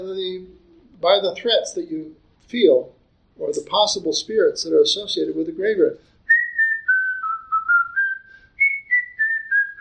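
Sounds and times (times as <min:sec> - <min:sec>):
speech: 0:00.0 - 0:06.1
person whistling a tuneless melody: 0:06.3 - 0:09.7.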